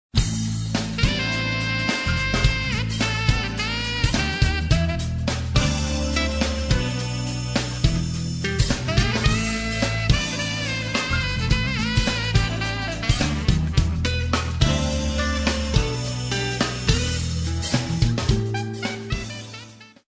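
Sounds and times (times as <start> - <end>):
jazz funk music: 0.2 - 20.0.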